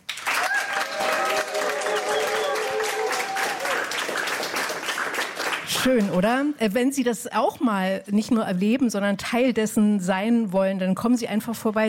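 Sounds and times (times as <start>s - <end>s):
studio audience applauding: 0.0s - 6.2s
speech: 5.8s - 11.8s.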